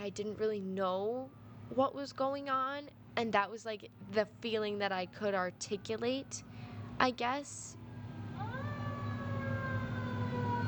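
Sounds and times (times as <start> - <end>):
fire truck low engine rumble: 0.0 - 10.6
speech: 0.1 - 7.8
fire truck siren wailing: 7.8 - 10.6.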